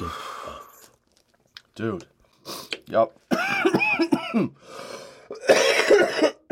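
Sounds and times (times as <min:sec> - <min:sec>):
wheezy breath: 0:00.0 - 0:01.0, 0:04.6 - 0:05.4
speech: 0:01.8 - 0:02.1, 0:02.9 - 0:04.8
harsh raspy coughing after smoking from a glass piece: 0:03.3 - 0:06.5.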